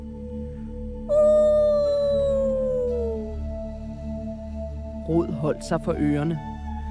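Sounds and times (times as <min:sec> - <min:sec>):
loud eerie howling in a forest: 0:01.1 - 0:03.7
speech: 0:05.1 - 0:06.5.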